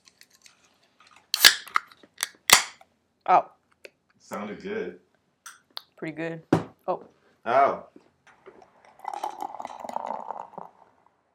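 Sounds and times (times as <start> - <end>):
speech: 3.3 - 3.6, 4.3 - 5.1, 6.0 - 8.0
beer glugging and splashing into a glass: 8.4 - 11.3
fizzy hiss of beer foam: 8.6 - 11.0.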